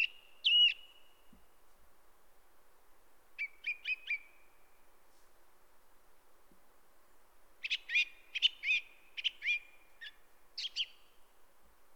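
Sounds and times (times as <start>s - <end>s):
song thrush repeating a short sharp doubled phrase: 0.0s - 1.7s, 3.3s - 5.0s, 7.0s - 11.4s
soft background hiss: 0.0s - 11.9s.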